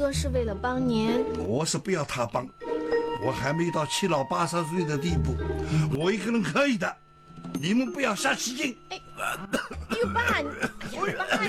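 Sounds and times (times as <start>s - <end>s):
speech: 0.0s - 11.4s
person coughing: 9.2s - 11.4s
throat clearing: 9.2s - 11.4s.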